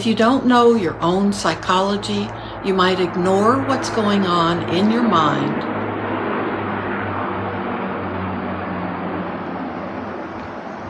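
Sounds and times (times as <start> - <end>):
speech: 0.0 - 5.7
small propeller plane droning overhead: 0.0 - 10.8.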